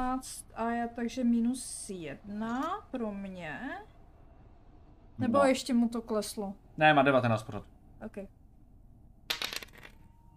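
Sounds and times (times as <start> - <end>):
speech: 0.1 - 4.0, 5.2 - 8.4
dice rattling across a hard tabletop: 9.3 - 10.0.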